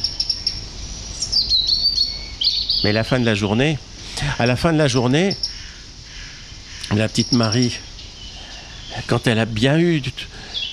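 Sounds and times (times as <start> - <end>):
blackbird, warbler and robin singing in a tree: 0.0 - 10.7
faint low noise: 0.0 - 10.7
speech: 2.8 - 5.5, 6.9 - 7.9, 9.0 - 10.4.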